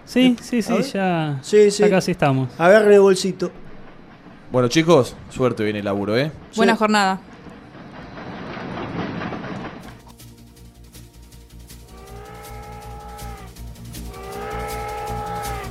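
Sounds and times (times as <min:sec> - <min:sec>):
speech: 0:00.1 - 0:03.6, 0:04.5 - 0:07.3
train rumbling as it enters a station platform: 0:01.4 - 0:15.7
train horn wails at a station platform: 0:11.8 - 0:15.7.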